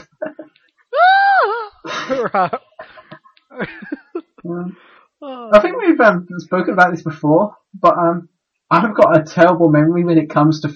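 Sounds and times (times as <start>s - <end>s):
person screeching imitating a pterodactyl-like creature: 1.0s - 3.2s
laughter: 1.9s - 4.6s
speech: 2.2s - 2.6s, 3.6s - 10.7s.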